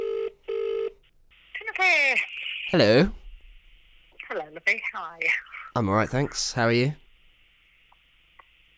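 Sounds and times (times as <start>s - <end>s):
outgoing phone call ringback tone through a phone line: 0.0s - 1.0s
speech: 1.8s - 3.2s, 5.0s - 7.0s.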